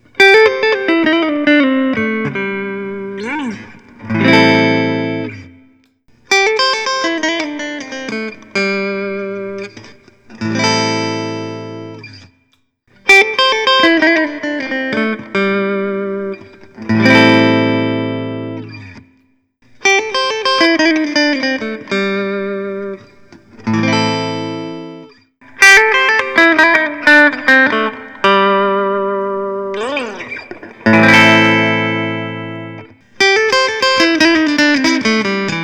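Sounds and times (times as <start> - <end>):
Paul Reed Smith P22 guitar in Trampas Green: 0.0 - 35.6.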